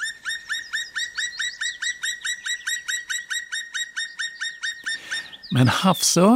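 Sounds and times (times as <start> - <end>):
black woodpecker calling in ringing notes: 0.0 - 6.3
speech: 5.5 - 6.3.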